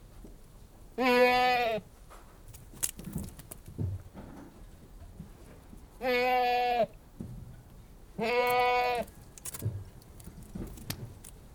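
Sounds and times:
Anglo-Nubian goat bleating: 1.0 - 1.8, 6.0 - 6.9, 8.2 - 9.1
soft rustles and knocks: 2.1 - 5.9, 9.0 - 11.5.

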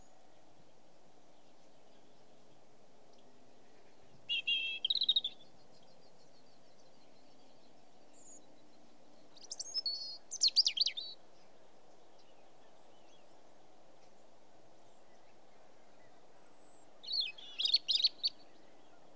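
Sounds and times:
quiet background hiss: 0.0 - 19.1
European robin song of warbled twisting notes: 4.3 - 5.4, 16.5 - 18.6.

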